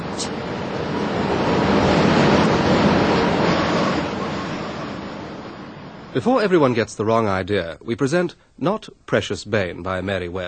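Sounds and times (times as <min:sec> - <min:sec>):
strong rushing wind: 0:00.0 - 0:06.8
speech: 0:06.2 - 0:10.4.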